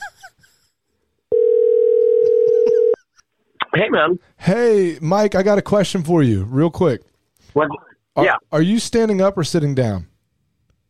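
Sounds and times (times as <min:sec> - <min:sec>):
outgoing telephone call ringing tone: 0:01.3 - 0:03.0
speech: 0:03.8 - 0:10.1.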